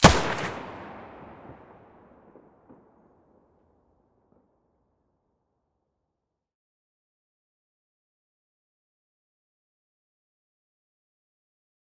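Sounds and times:
weapon muzzle blast: 0.0 - 2.0.

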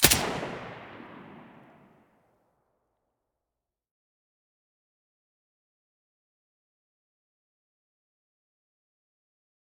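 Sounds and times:
silenced gunshot: 0.0 - 2.0.

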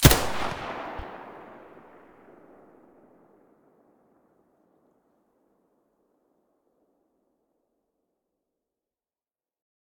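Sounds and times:
MP9 muzzle blast: 0.0 - 2.3.

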